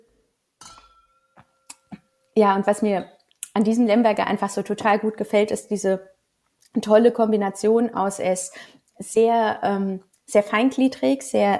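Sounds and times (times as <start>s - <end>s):
wine glasses clinking in a toast: 0.6s - 2.2s
speech: 2.4s - 6.1s, 6.7s - 11.5s.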